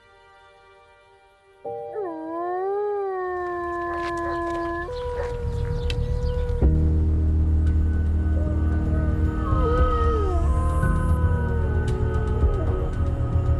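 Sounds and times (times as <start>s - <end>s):
wolves howling: 1.8s - 6.9s, 8.2s - 13.5s
steady low rumble: 4.7s - 13.5s.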